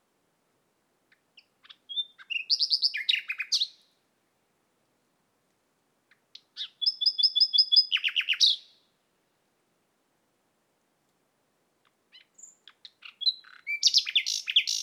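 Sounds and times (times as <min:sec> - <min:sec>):
common nightingale Luscinia megarhynchos song: 0:01.1 - 0:04.0, 0:06.1 - 0:08.9, 0:11.8 - 0:14.8.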